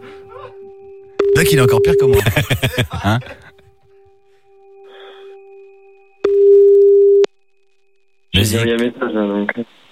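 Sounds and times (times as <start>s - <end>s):
telephone line ringing tone with no answer: 1.2s - 2.2s, 6.2s - 7.3s
speech: 1.4s - 3.4s, 8.4s - 9.8s
laughter: 2.1s - 3.6s.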